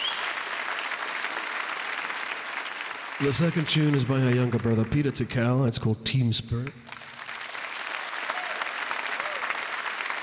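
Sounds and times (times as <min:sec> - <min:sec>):
audience applause: 0:00.0 - 0:05.3, 0:06.9 - 0:10.2
speech: 0:03.2 - 0:07.0.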